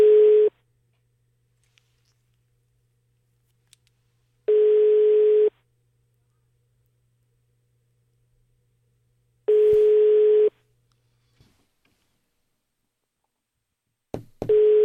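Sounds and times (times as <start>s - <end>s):
ringback tone of an outgoing telephone call: 0.0s - 0.5s, 4.5s - 5.5s, 9.5s - 10.6s, 14.5s - 14.8s.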